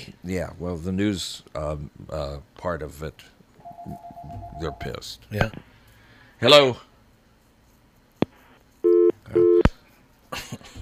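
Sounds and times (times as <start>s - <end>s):
speech: 0.3s - 5.7s, 6.4s - 6.9s
telephone ringing with short electronic bursts: 3.6s - 4.9s.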